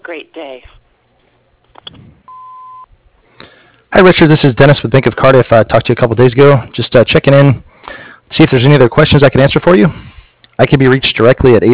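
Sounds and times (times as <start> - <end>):
speech: 0.1 - 0.9, 3.9 - 11.7
answering machine beep: 2.3 - 2.9.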